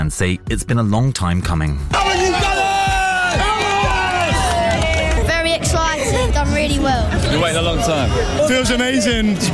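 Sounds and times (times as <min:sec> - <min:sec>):
speech: 0:00.0 - 0:02.4, 0:06.8 - 0:09.5
large crowd of football fans roaring and cheering at an open-top bus parade: 0:01.9 - 0:06.4, 0:07.3 - 0:09.5.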